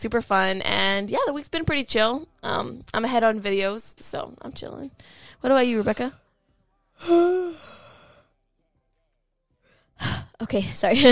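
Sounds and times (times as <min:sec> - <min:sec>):
speech: 0:00.0 - 0:06.2, 0:07.0 - 0:07.8, 0:10.0 - 0:11.0
person yawning: 0:07.0 - 0:08.0.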